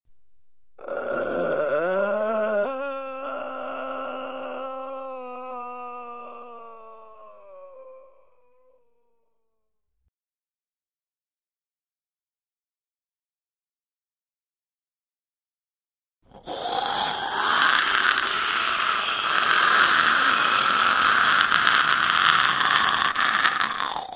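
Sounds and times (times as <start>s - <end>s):
zombie moan: 0.8s - 8.8s, 16.3s - 24.1s.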